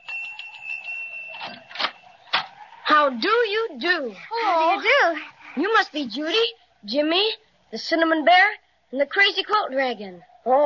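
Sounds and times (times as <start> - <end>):
doorbell ringing at a front door: 0.0 - 2.3
speech: 3.0 - 10.6.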